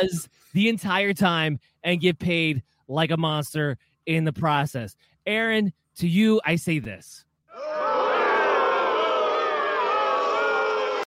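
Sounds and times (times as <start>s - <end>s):
speech: 0.0s - 8.1s
large crowd booing: 7.5s - 11.0s.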